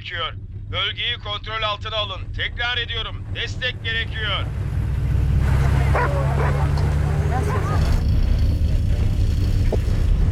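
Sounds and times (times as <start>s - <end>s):
speech: 0.0s - 4.6s, 5.6s - 6.6s
low engine-like rumble: 0.0s - 10.2s
faint dog barks: 5.9s - 8.0s.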